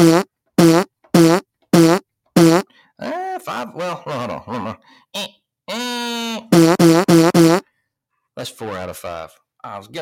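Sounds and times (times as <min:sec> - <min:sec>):
fart sound effects from a soundboard button: 0:00.0 - 0:02.6, 0:06.5 - 0:07.6
speech: 0:09.0 - 0:10.0.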